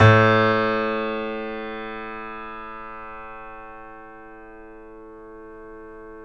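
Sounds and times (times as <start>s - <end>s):
piano note A2: 0.0s - 6.2s.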